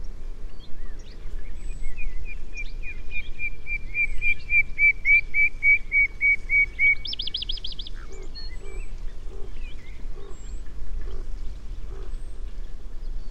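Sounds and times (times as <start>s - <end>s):
common nightingale Luscinia megarhynchos singing whistles and trill: 0.0s - 10.6s.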